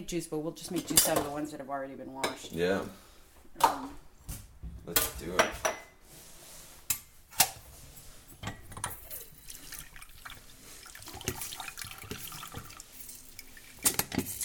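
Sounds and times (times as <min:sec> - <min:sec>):
speech: 0:00.0 - 0:05.8
tap water running into a sink: 0:09.2 - 0:14.4.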